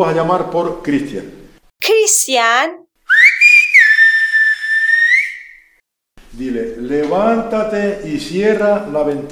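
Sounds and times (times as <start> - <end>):
speech: 0.0 - 1.4, 2.1 - 2.9, 6.4 - 9.3
student whistling in Silbo whistled language: 3.1 - 5.7.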